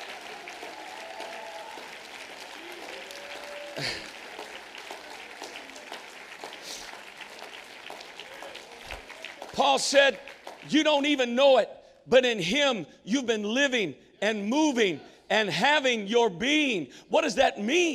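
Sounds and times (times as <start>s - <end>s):
large audience applauding: 0.0s - 11.2s
speech: 3.8s - 4.1s, 9.6s - 17.9s.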